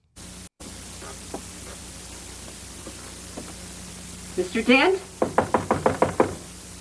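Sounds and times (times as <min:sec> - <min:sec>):
speech: 0:04.4 - 0:05.1
police knocking on a wig maker's door: 0:05.2 - 0:06.5.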